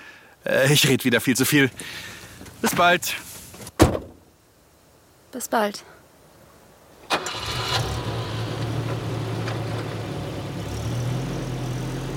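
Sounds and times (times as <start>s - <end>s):
speech: 0.4s - 3.3s, 3.9s - 4.1s, 5.3s - 5.9s
car engine starting: 7.1s - 12.1s.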